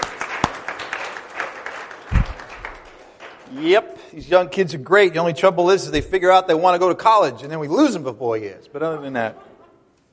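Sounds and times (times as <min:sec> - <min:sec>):
room full of people applauding: 0:00.0 - 0:03.9
low thump: 0:02.1 - 0:02.4
speech: 0:03.5 - 0:09.5
laughter: 0:08.8 - 0:10.1.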